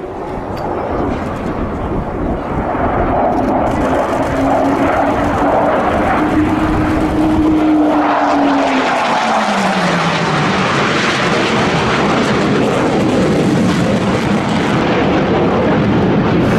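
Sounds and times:
fighter jet with Russian engine roaring past at air show in China: 0.0s - 16.5s.

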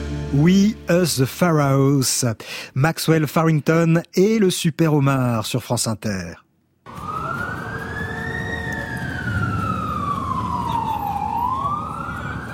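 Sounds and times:
speech: 0.3s - 6.4s
constant low rumble of New York street traffic: 6.9s - 12.5s
wailing emergency siren on a New York street in the early 1980s: 6.9s - 12.5s.

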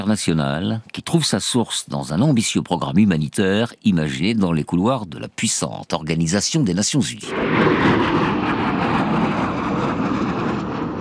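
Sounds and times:
speech: 0.0s - 9.5s
US AWACS military aircraft taking off at night from a military air base in Riyadh: 7.3s - 10.9s.

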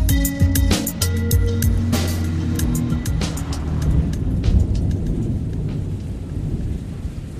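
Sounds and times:
distant thunder rumbling: 0.1s - 7.3s
rain pouring: 0.4s - 7.3s
water drips on surfaces: 0.9s - 6.7s.

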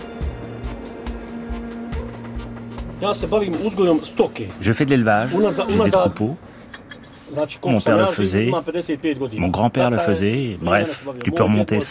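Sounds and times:
heavy mining trucks rumbling at a huge quarry: 0.0s - 9.4s
speech: 3.0s - 6.5s, 7.3s - 11.8s.

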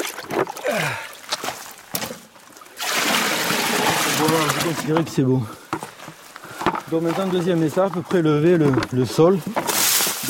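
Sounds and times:
gurgling scoops of river water: 0.0s - 5.2s, 9.4s - 10.2s
river water sloshing into a large container: 0.0s - 10.2s
speech: 4.6s - 5.6s, 6.9s - 9.6s.

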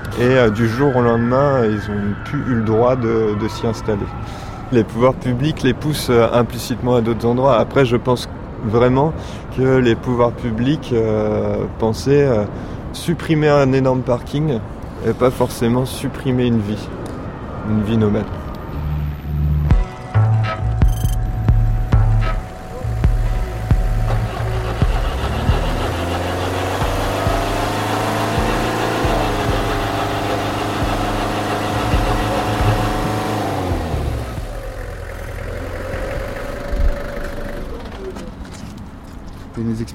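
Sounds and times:
speech: 0.2s - 17.1s, 17.7s - 18.4s
truck engine being started and idling: 19.5s - 38.7s.

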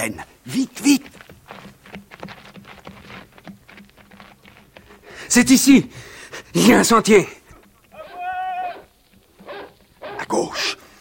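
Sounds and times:
speech: 0.0s - 1.2s, 5.3s - 7.4s
large dog howling on a moor: 7.9s - 10.3s.

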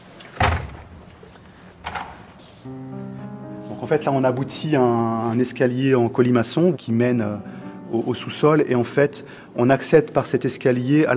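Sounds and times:
heavy basement door pulled open with deep clunk: 0.3s - 1.2s, 1.8s - 2.3s
speech: 2.6s - 3.0s, 3.8s - 11.1s.

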